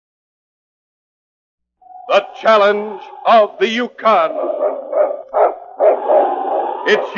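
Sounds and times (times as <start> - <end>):
speech: 2.1 - 4.8, 6.9 - 7.1
husky lead sled dog barking: 4.3 - 7.1.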